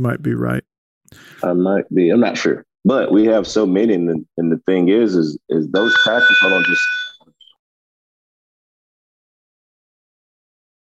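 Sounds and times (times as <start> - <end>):
speech: 0.0 - 7.0
school bell ringing: 5.8 - 7.2.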